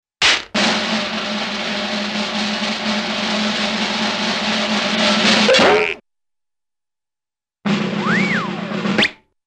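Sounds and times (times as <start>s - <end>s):
snare drum roll: 0.2s - 5.6s, 7.7s - 9.1s
cartoon slide whistle double boop-like sound: 8.0s - 9.2s.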